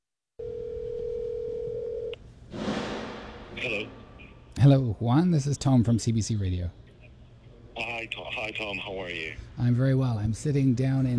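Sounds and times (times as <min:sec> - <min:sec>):
steady unbroken telephone dial tone: 0:00.4 - 0:02.2
speech: 0:04.6 - 0:06.8, 0:08.5 - 0:11.1.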